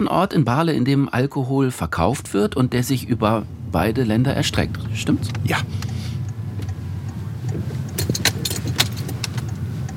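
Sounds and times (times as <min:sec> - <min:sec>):
speech: 0:00.0 - 0:05.9
car engine rumbling: 0:00.0 - 0:09.9
keys jingling and clinking: 0:07.8 - 0:09.6.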